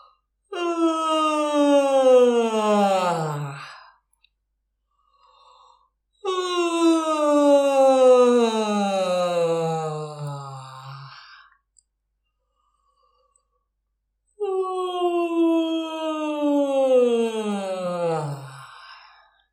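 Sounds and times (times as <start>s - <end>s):
exaggerated voiced yawns on an open vowel as a voice warm-up: 0.5s - 3.8s, 6.2s - 11.4s, 14.4s - 19.0s.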